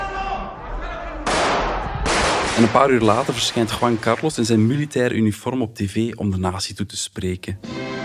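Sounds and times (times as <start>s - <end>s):
person shouting in a muffled room: 0.0s - 1.2s
gunshots fired in parliament: 1.3s - 4.7s
speech: 2.6s - 7.9s.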